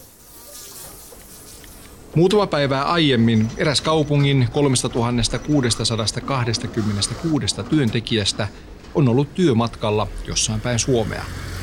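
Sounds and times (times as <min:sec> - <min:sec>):
housefly buzzing against window glass in a school teachers' room: 0:00.0 - 0:02.0
speech: 0:02.1 - 0:11.5.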